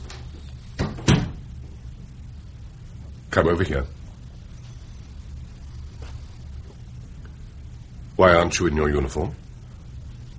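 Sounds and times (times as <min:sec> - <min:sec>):
door closing with a firmer heavier thud: 0:00.8 - 0:01.5
speech: 0:03.4 - 0:04.0, 0:08.2 - 0:09.4.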